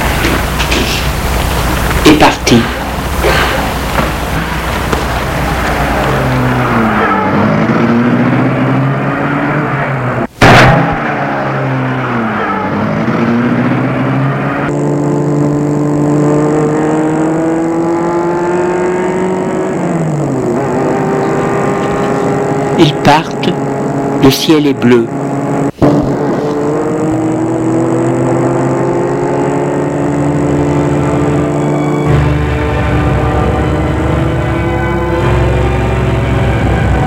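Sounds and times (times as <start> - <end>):
car engine rumbling and revving as the car pulls away: 0.0 - 37.0
speech: 2.0 - 3.4, 22.8 - 23.6, 24.2 - 25.2
sharp thud: 10.4 - 11.3, 25.7 - 26.8.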